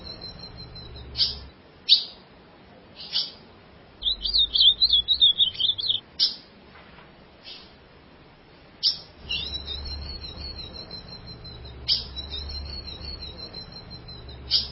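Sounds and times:
ultramarine grosbeak song: 0:00.0 - 0:02.2, 0:04.0 - 0:06.4, 0:08.8 - 0:14.7.

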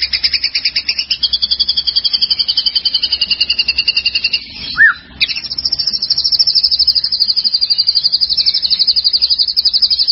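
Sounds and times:
White-rumped shama song: 0:00.0 - 0:10.1
White-rumped shama short arched whistle: 0:04.8 - 0:05.0.

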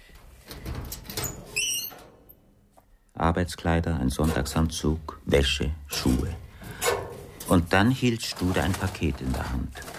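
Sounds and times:
speech: 0:03.3 - 0:06.4, 0:07.5 - 0:09.9
wardrobe door opening with a soft rustling clatter in a hallway: 0:06.0 - 0:09.9.

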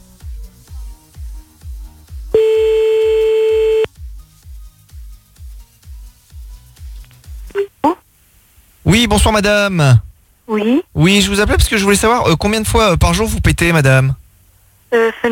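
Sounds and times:
pulsing backing music: 0:00.0 - 0:07.5
telephone line tone during a call-back: 0:02.4 - 0:03.9
speech: 0:08.9 - 0:14.2, 0:14.9 - 0:15.2.

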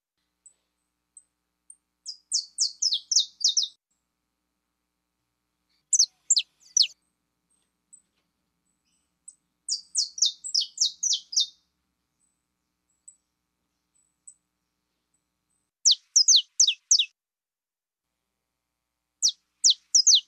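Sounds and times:
pure-bred Belgian canary singing: 0:02.1 - 0:03.8, 0:05.9 - 0:07.0, 0:09.7 - 0:11.6, 0:15.8 - 0:17.1, 0:19.2 - 0:20.2.

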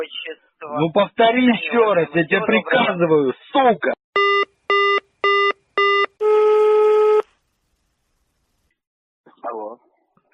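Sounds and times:
speech: 0:00.0 - 0:04.0
telephone dialing tones: 0:04.2 - 0:06.4.

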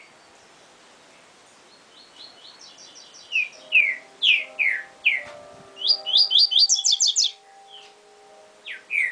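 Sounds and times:
double-collared seedeater singing: 0:03.5 - 0:09.1.

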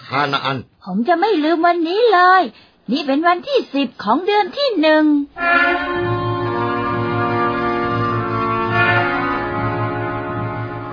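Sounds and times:
speech: 0:00.1 - 0:06.2
signal horn blown to start a journey: 0:05.4 - 0:10.9.

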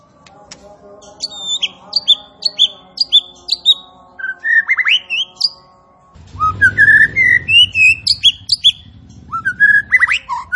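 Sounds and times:
striated grassbird song of bright whistled slurs and quick upward notes: 0:01.2 - 0:05.6, 0:06.4 - 0:10.5
low rumbling noise: 0:06.2 - 0:10.5.

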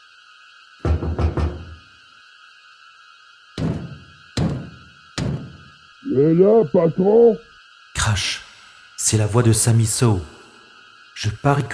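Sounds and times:
faint steady hum: 0:00.0 - 0:11.7
visitors knocking on a door: 0:00.8 - 0:01.8, 0:03.6 - 0:05.7
speech: 0:06.0 - 0:08.4, 0:09.0 - 0:10.4, 0:11.2 - 0:11.7.

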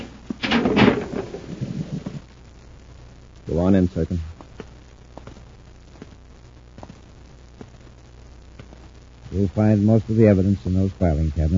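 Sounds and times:
heavy concealed door in a sub-basement sliding open: 0:00.0 - 0:02.2
speech: 0:03.5 - 0:04.3, 0:09.4 - 0:11.5.

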